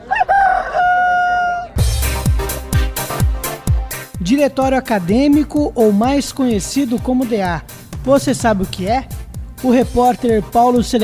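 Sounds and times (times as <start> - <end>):
rooster crowing: 0.0 - 1.8
energetic music with punchy bass drum hits: 1.8 - 11.0
speech: 4.2 - 11.0.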